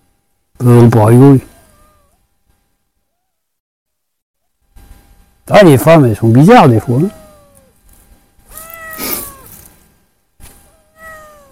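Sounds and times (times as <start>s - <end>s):
speech: 0.6s - 1.5s, 5.5s - 7.2s
talkative female cat meowing with drawn-out wavering calls: 1.4s - 2.2s, 3.1s - 3.5s, 6.6s - 7.8s, 8.4s - 9.6s, 10.7s - 11.5s.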